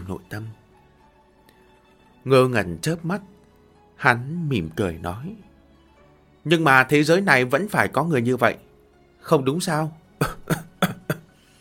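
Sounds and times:
speech: 0.1 - 0.6, 2.2 - 3.3, 4.0 - 5.5, 6.4 - 10.6
man coughing violently: 10.2 - 11.3.

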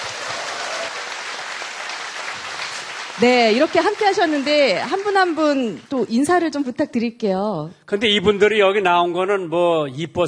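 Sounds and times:
audience applause welcoming guests: 0.0 - 6.0
speech: 3.2 - 10.2.

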